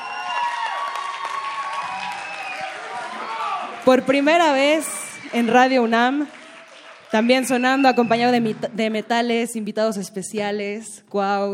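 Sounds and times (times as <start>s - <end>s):
audience shrill whistles: 0.0s - 3.4s, 7.2s - 8.5s
audience applause: 0.0s - 9.1s
speech: 3.8s - 6.4s, 7.1s - 11.5s.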